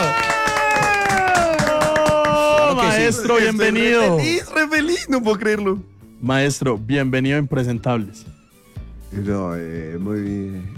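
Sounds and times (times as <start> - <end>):
audience applause welcoming a comedian: 0.0 - 3.3
speech: 3.1 - 8.4, 9.1 - 10.7.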